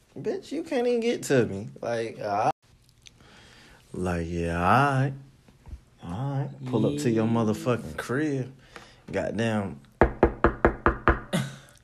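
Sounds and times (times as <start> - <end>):
speech: 0.2 - 2.5, 3.9 - 5.3, 6.0 - 9.9
quick knocks on a door: 10.0 - 11.4.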